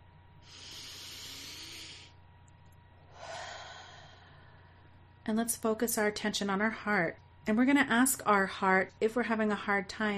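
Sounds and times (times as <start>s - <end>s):
deep breaths in and out: 0.4s - 2.2s, 3.0s - 5.0s
speech: 5.3s - 10.1s.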